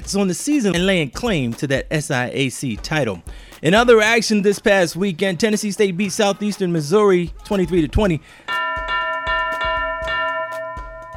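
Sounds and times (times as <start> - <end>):
speech: 0.1 - 8.6
boxing ring bell clanging in double strikes: 8.5 - 11.1.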